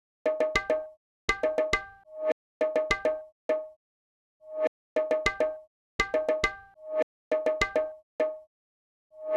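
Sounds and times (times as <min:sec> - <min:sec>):
percussion in E minor: 0:00.2 - 0:03.7, 0:04.6 - 0:08.5.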